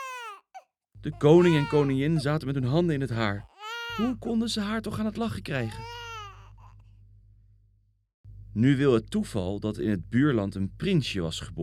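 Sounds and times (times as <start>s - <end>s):
young girl wailing and sobbing: 0.0s - 0.4s, 1.4s - 1.9s
steady low hum: 1.0s - 5.8s, 6.4s - 11.6s
speech: 1.0s - 6.0s, 8.6s - 11.6s.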